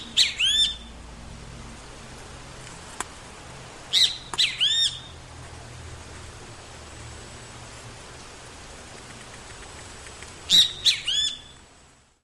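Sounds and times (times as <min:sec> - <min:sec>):
great kiskadee calls: 0:00.0 - 0:00.9, 0:03.9 - 0:05.2, 0:10.5 - 0:11.6
constant background hiss: 0:00.0 - 0:12.2.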